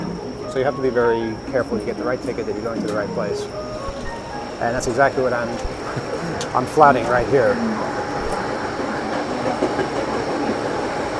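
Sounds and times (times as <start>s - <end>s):
crowded subway car in motion rumbling: 0.0s - 11.1s
speech: 0.5s - 3.7s, 4.6s - 7.9s
subway wheels clacking on track: 5.8s - 11.1s.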